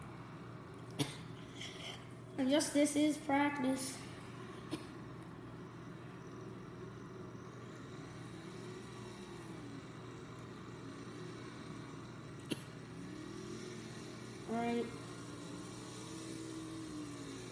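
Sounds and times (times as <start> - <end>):
speech: 2.4 - 4.0
race car engine revving in a racing video game: 6.6 - 17.5.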